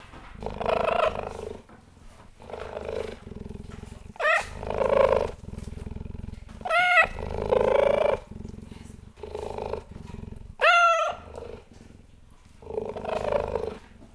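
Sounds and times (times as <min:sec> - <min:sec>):
adult female cheetah Acinonyx jubatus purring to keeper: 0:00.0 - 0:14.1
adult female cheetah Acinonyx jubatus meowing begging for meat: 0:04.2 - 0:05.3, 0:06.6 - 0:08.2, 0:10.6 - 0:11.5.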